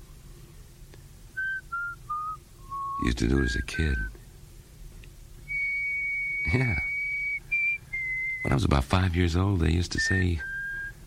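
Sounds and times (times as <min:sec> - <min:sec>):
person whistling: 0:01.4 - 0:04.1, 0:05.5 - 0:08.6, 0:10.0 - 0:11.0
speech: 0:03.0 - 0:04.2, 0:06.5 - 0:06.9, 0:08.4 - 0:10.5.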